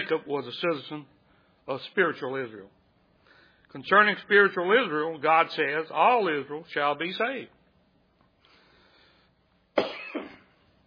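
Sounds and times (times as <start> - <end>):
speech: 0.1 - 2.8, 3.7 - 7.6
person coughing harshly: 9.8 - 10.6.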